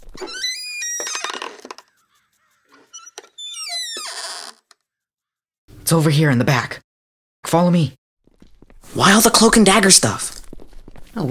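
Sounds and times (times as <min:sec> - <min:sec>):
squeaky two-car garage door opening: 0:00.0 - 0:01.9, 0:02.7 - 0:04.8
speech: 0:05.9 - 0:06.8, 0:07.5 - 0:08.0, 0:08.9 - 0:10.4.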